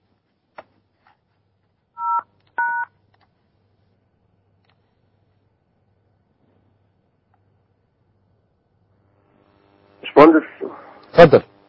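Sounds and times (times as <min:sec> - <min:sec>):
mobile phone keypad tones as a code is typed in: 0:02.0 - 0:02.9
speech: 0:10.2 - 0:11.5.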